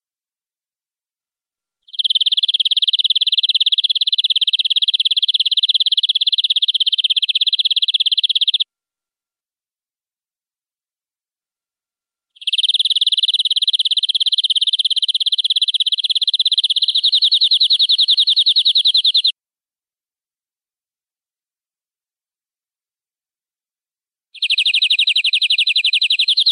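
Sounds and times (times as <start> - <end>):
canary singing long-duration rolling trill: 1.9 - 8.6, 12.4 - 19.3, 24.4 - 26.5.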